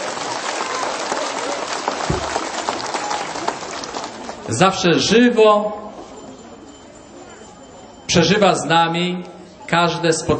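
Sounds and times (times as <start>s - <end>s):
audience applause: 0.0s - 5.1s
speech: 4.5s - 5.8s, 8.1s - 10.3s.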